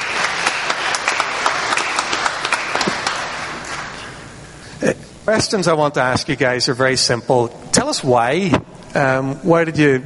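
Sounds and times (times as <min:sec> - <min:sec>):
audience applause: 0:00.0 - 0:04.1
speech: 0:05.3 - 0:10.0.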